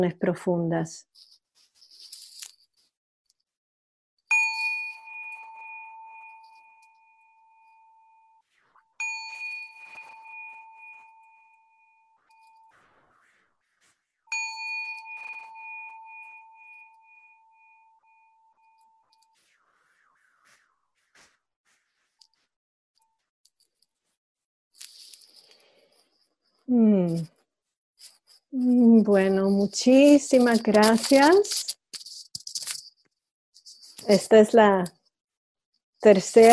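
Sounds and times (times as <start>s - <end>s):
speech: 0.0s - 1.3s, 28.5s - 31.8s, 34.1s - 35.0s, 36.0s - 36.5s
meditation bell ringing: 4.3s - 12.8s, 14.3s - 19.4s.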